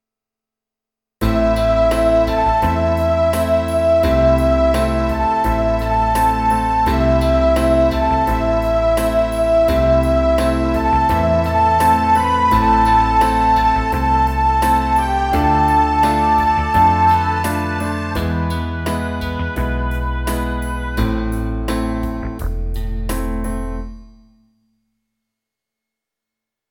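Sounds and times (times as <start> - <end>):
transverse flute: 1.2 - 21.9
string melody: 1.2 - 23.9.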